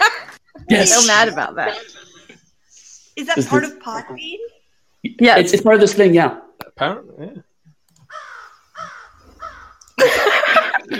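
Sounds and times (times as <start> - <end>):
laughter: 0.0 - 2.4, 10.0 - 10.9
speech: 0.7 - 2.0, 3.2 - 7.5
crow cawing sound effect from a soundboard: 8.1 - 9.9.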